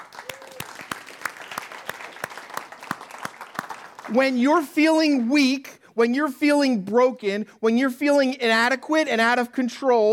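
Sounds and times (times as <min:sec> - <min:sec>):
audience clapping in rhythm: 0:00.0 - 0:05.6
speech: 0:04.1 - 0:10.1.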